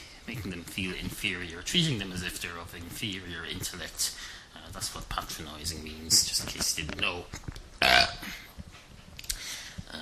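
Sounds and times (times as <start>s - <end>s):
speech: 0.4s - 8.4s
man belching: 7.8s - 8.4s.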